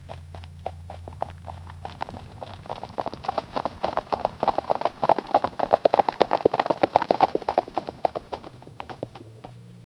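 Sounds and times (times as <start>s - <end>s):
horse galloping fast: 0.0s - 9.9s.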